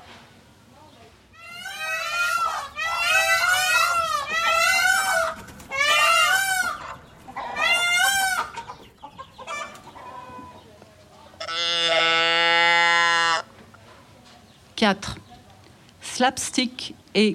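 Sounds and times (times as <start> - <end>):
farmyard chickens clucking: 0.8 - 15.8
loud drawn-out harmonic cries of farmyard fowl: 1.3 - 10.6
speech: 14.8 - 15.2, 16.2 - 17.3.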